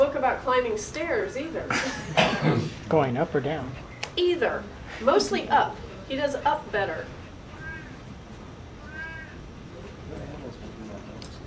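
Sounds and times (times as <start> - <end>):
speech: 0.1 - 7.2
cat meowing in complaint: 7.5 - 8.1, 8.8 - 9.5.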